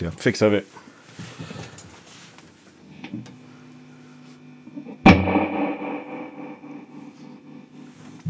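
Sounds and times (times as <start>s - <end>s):
speech: 0.0s - 1.5s
quieter scattered guitar noises: 4.4s - 8.2s
single strummed guitar chord with heavy reverb and tremolo: 4.7s - 8.0s.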